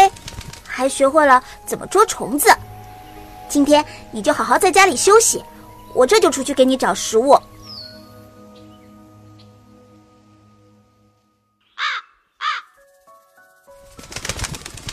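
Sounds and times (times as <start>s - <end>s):
soft tonal music: 0.0s - 11.8s, 12.7s - 14.9s
speech: 0.8s - 2.7s, 3.5s - 7.5s
crow cawing: 11.8s - 12.8s.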